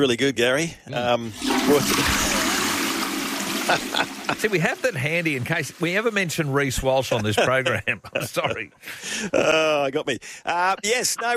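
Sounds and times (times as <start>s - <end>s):
speech: 0.0s - 2.4s, 3.7s - 11.3s
toilet flushing with swirling gurgling water: 1.2s - 7.5s
laughter: 3.4s - 5.0s, 7.0s - 9.9s, 10.5s - 11.3s.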